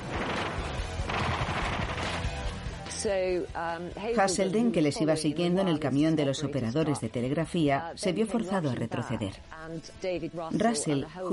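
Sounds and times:
gunfire from soldiers during a wartime raid: 0.0s - 2.9s
speech: 3.0s - 11.3s.

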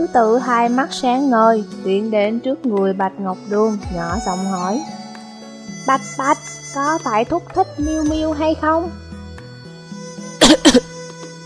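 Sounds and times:
speech: 0.0s - 5.0s, 5.8s - 9.1s
dry coughs from a person clutching their chest: 10.4s - 10.9s.

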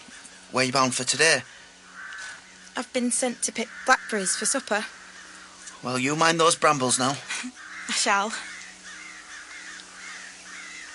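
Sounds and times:
crows cawing in a field: 0.0s - 10.9s
steady low hum: 0.0s - 10.9s
speech: 0.5s - 1.5s, 2.8s - 5.0s, 5.8s - 8.5s.

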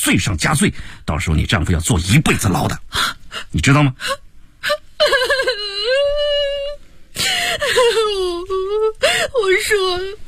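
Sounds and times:
speech: 0.0s - 5.3s, 8.9s - 10.2s
woman crying and wailing during questioning: 3.0s - 10.2s.

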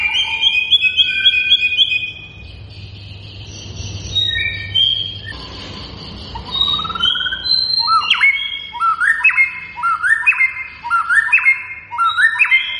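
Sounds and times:
white-rumped shama singing chips and whistles: 0.0s - 12.7s.

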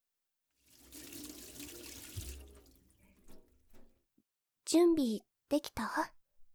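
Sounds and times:
hands washed under a running tap: 0.6s - 3.9s
speech: 4.7s - 6.2s.

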